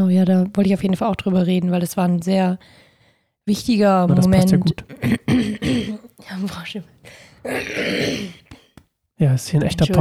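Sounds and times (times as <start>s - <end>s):
speech: 0.0s - 2.8s, 3.5s - 8.4s, 9.2s - 10.0s
person clearing throat: 4.9s - 6.1s, 7.5s - 8.6s.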